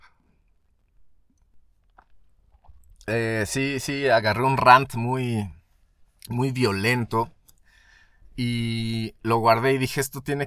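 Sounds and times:
person gulping: 0.1s - 3.1s
person sipping coffee: 0.2s - 3.1s
speech: 3.1s - 5.6s, 6.3s - 7.4s, 8.4s - 10.4s.

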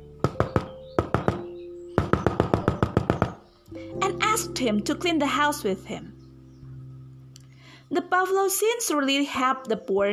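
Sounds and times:
crisp knocking on a door: 0.2s - 3.5s
speech: 3.8s - 6.2s, 7.9s - 10.1s.

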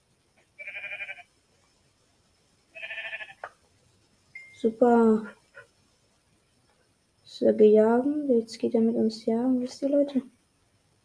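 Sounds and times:
sheep bleating: 0.6s - 1.3s, 2.8s - 3.5s
speech: 4.6s - 5.4s, 7.4s - 10.4s.

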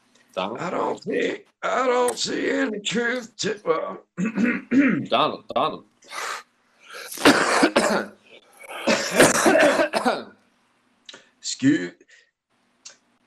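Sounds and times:
speech: 0.4s - 6.4s, 7.2s - 8.2s, 11.6s - 12.0s
person clearing throat: 4.2s - 5.1s, 6.9s - 10.3s
person coughing: 4.2s - 5.1s, 6.9s - 10.3s.

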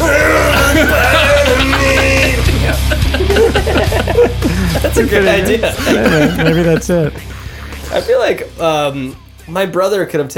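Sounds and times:
person screaming imitating harsh rock vocals: 0.0s - 3.2s
laughter: 0.0s - 8.2s
speech: 5.0s - 7.3s, 7.9s - 10.3s.

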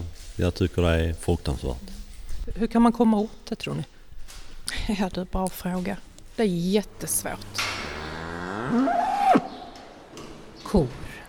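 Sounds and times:
speech: 0.4s - 4.0s, 4.8s - 7.8s, 8.7s - 9.0s, 10.7s - 11.1s
cow mooing: 6.9s - 9.6s.

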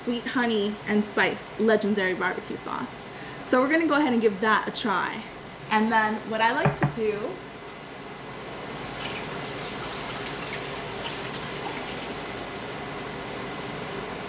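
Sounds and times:
speech: 0.0s - 7.5s
water boiling in a pot with meat, oregano, garlic powder and cumin: 7.5s - 14.2s.

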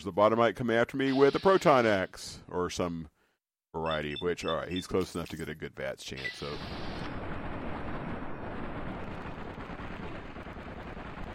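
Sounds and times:
speech: 0.0s - 7.0s
video game gunfire from a rapid-firing weapon: 7.1s - 11.3s.

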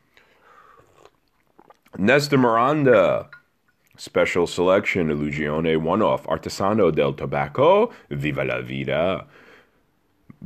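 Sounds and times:
mouth clicks: 0.2s - 2.0s
black tea sipping: 0.2s - 2.1s
short wet slurps of black tea: 0.8s - 2.0s
speech: 2.0s - 3.4s, 4.0s - 9.4s.

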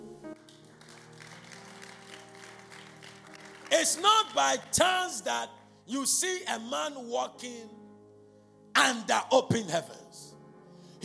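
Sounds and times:
sustained keyboard chords: 0.0s - 11.0s
audience clapping: 0.2s - 5.6s
speech: 3.8s - 7.8s, 8.8s - 10.2s.

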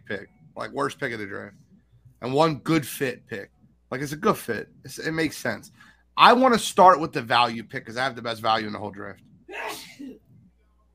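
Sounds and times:
speech: 0.1s - 1.6s, 2.2s - 9.9s
single sharp sneeze: 9.5s - 10.2s.

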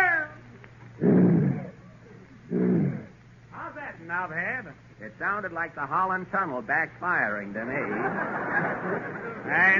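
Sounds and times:
voice imitating a lion roar with a loud low rumbling growl: 2.5s - 3.1s
speech: 4.1s - 9.7s
laughter: 7.6s - 9.7s.

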